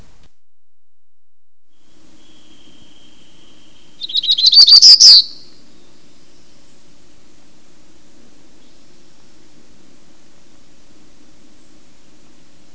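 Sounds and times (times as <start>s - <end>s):
black-throated gray warbler calls: 2.1s - 6.8s.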